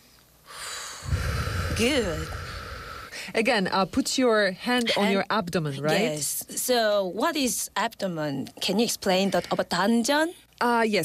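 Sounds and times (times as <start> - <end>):
deep inhale during an abdominal breathing exercise: 0.4 - 3.4
speech: 1.8 - 2.4, 3.3 - 11.0.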